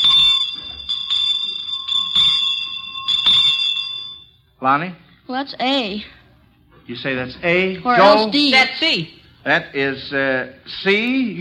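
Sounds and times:
handbell rung rapidly and continuously: 0:00.0 - 0:04.3
speech: 0:04.6 - 0:06.2, 0:06.9 - 0:11.3.

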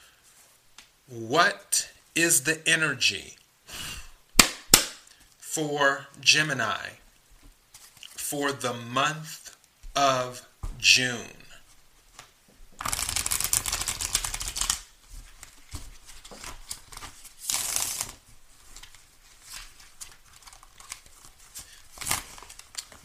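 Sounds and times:
speech: 0:01.1 - 0:03.4, 0:05.6 - 0:07.0, 0:08.3 - 0:09.4, 0:10.0 - 0:11.4
tarot cards being shuffled: 0:12.1 - 0:23.0.

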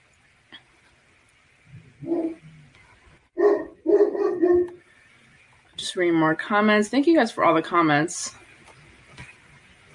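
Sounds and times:
dog barking in a home: 0:02.0 - 0:02.4, 0:03.4 - 0:04.8
speech: 0:06.0 - 0:08.4.

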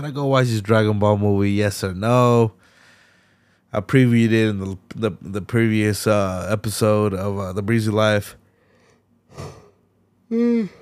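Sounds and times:
speech: 0:00.0 - 0:02.6, 0:03.7 - 0:08.4, 0:09.3 - 0:09.6, 0:10.3 - 0:10.8
person yawning: 0:09.3 - 0:10.8.

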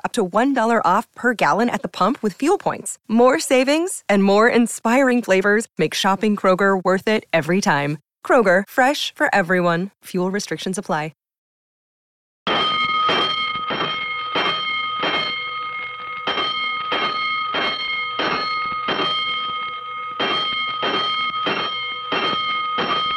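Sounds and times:
speech: 0:00.1 - 0:11.2
fire station alarm bell clanging for a five-alarm fire: 0:12.5 - 0:23.1.

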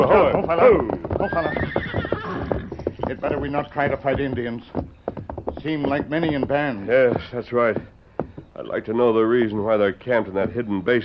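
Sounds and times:
speech: 0:00.0 - 0:01.6, 0:03.1 - 0:05.0, 0:05.6 - 0:07.9, 0:08.6 - 0:11.0
horses neighing: 0:00.0 - 0:08.8
horse hooves clopping: 0:00.0 - 0:11.0.

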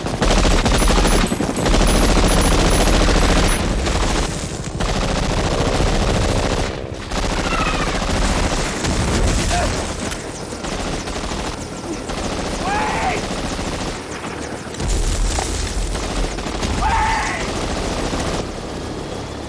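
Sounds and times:
rapid gunfire in a movie battle scene: 0:00.0 - 0:18.6
helicopter rotor churning: 0:00.0 - 0:19.4
voices shouting: 0:12.6 - 0:13.3, 0:16.8 - 0:17.5.

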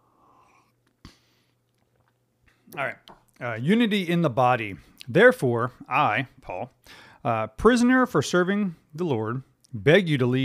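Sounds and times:
person sipping coffee: 0:00.0 - 0:02.8
speech: 0:02.7 - 0:10.4.

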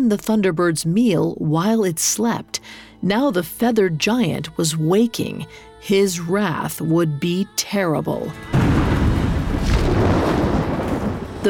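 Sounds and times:
speech: 0:00.0 - 0:08.7
thunder crash: 0:08.5 - 0:11.4.

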